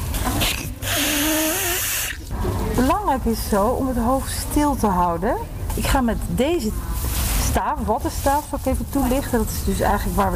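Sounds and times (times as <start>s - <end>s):
person blowing their nose forcefully before a nasal swab test: 0.4s - 2.2s
speech: 2.8s - 6.9s, 7.6s - 10.3s.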